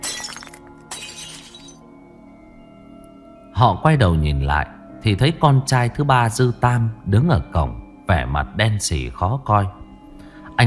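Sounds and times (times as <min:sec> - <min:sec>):
glass shattering: 0:00.0 - 0:01.8
tinkling glass fragments: 0:00.0 - 0:01.8
speech: 0:03.6 - 0:09.8.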